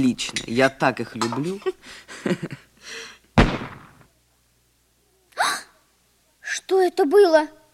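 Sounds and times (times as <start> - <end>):
speech: 0.0 - 3.6, 6.6 - 7.6
short breathy gasps: 2.8 - 3.2
gunshot: 3.4 - 4.1.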